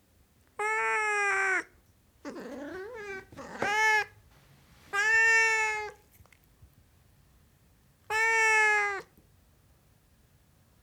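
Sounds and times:
Siamese cat meowing: 0.6 - 4.2, 4.9 - 6.0, 8.1 - 9.1.

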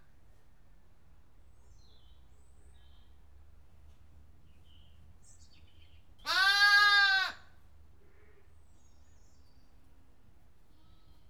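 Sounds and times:
faint low background noise: 0.0 - 11.2
lamb bleating in a barn: 6.3 - 7.4.

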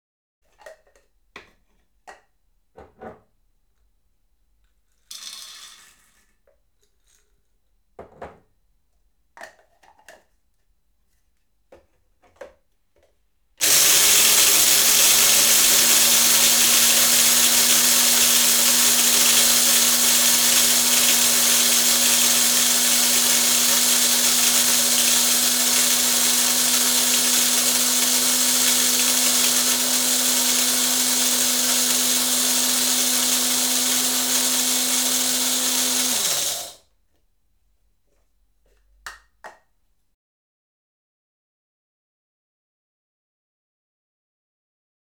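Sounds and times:
filled household coffee grinder operating: 5.1 - 6.4, 13.6 - 36.8.

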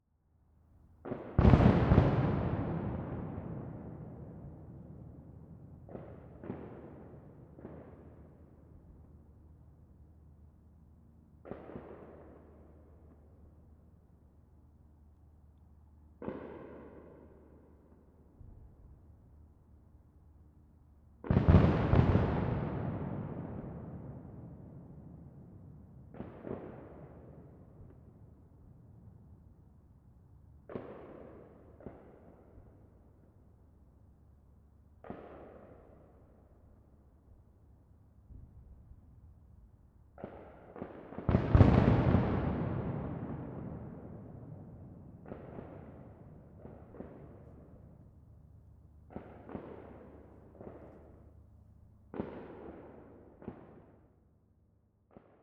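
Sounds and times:
fireworks: 1.0 - 9.0, 11.4 - 13.3, 16.2 - 19.0, 21.2 - 29.5, 30.6 - 33.3, 35.0 - 36.6, 38.3 - 48.3, 49.0 - 51.4, 52.1 - 54.3, 55.0 - 55.4.

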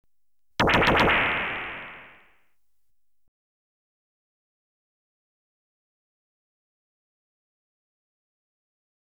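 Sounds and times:
electronically generated stun gun single burst: 0.6 - 2.2.

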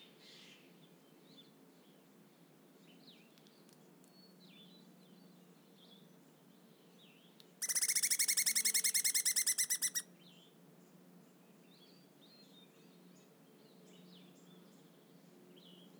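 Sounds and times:
loud squirrel calling in an Oregon forest meadow at dawn: 7.6 - 10.0.

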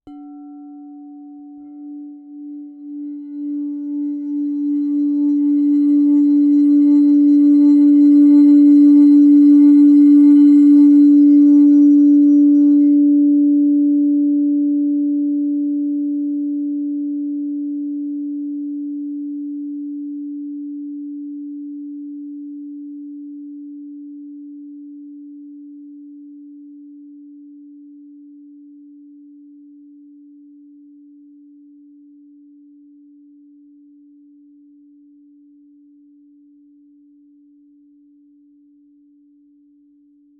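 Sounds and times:
singing bowl struck and sustaining in D: 0.1 - 18.6.

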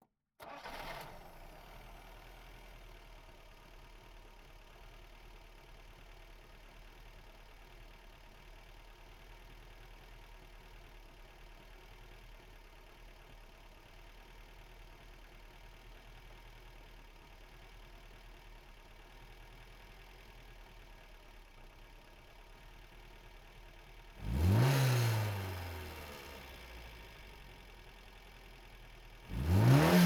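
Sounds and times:
FSO Polonez 1500 police car engine starting idling revving and switching off: 0.4 - 3.7, 22.4 - 30.0.

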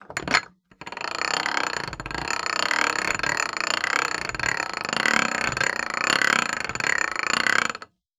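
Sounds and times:
cast iron inner cogwheel turning medium downwards fast: 0.2 - 7.9.

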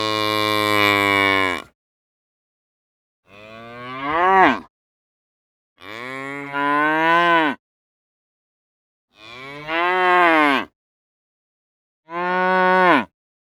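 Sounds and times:
cow mooing: 0.0 - 1.7, 3.3 - 4.7, 5.8 - 7.6, 9.2 - 10.7, 12.1 - 13.1.

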